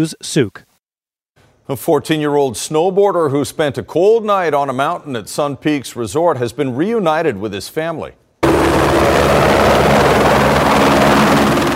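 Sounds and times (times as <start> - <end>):
speech: 0.0 - 0.7, 1.7 - 8.2
rescue helicopter rotor thump and engine whine returning from a search operation: 8.4 - 11.7.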